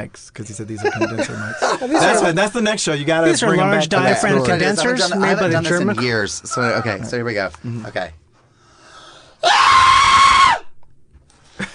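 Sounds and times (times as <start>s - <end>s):
speech: 0.0s - 8.2s
laughter: 0.7s - 2.4s
person screaming a high-pitched cartoon-like shriek: 9.4s - 10.7s.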